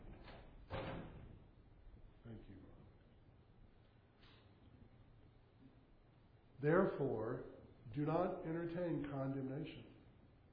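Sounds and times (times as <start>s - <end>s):
door swinging open and banging: 0.0s - 1.4s
low steady room hum: 0.0s - 10.5s
speech: 6.6s - 9.9s.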